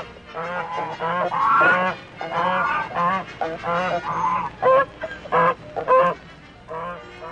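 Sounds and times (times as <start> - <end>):
flock of ducks and geese honking and quacking: 0.0 - 7.2.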